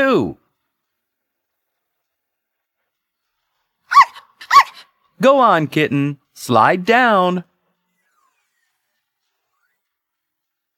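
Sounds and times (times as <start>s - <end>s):
speech: 0.0s - 0.4s, 5.2s - 7.5s
puppy barking on a playground slide: 3.9s - 4.9s.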